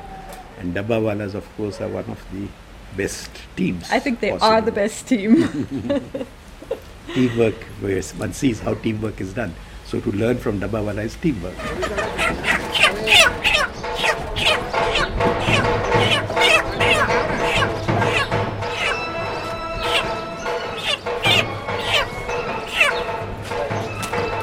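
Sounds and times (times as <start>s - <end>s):
speech: 0.6s - 16.5s
laughter: 5.3s - 7.6s, 11.5s - 13.4s
flock of chickens clucking and squawking: 11.4s - 24.4s
clattering bangs: 12.3s - 24.4s.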